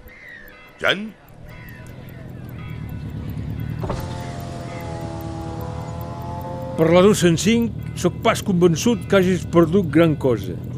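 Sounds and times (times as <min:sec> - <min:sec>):
speech: 0:00.8 - 0:01.2, 0:06.8 - 0:10.7
car engine rumbling: 0:01.1 - 0:10.7
sharp clunk: 0:03.8 - 0:04.3.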